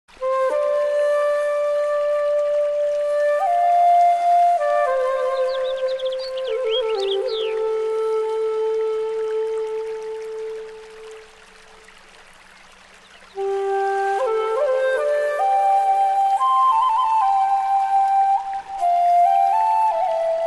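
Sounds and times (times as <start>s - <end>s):
flute playing Japanese music: 0.1s - 11.3s, 13.3s - 20.4s
nature sounds: 0.1s - 20.4s.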